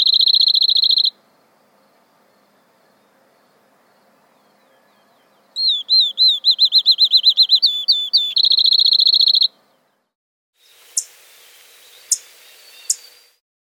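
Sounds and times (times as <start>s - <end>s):
field sparrow song of whistled notes and trill: 0.0s - 1.2s, 4.4s - 9.6s, 10.8s - 13.4s
field sparrow sharp chips: 5.6s - 9.5s, 10.8s - 13.4s.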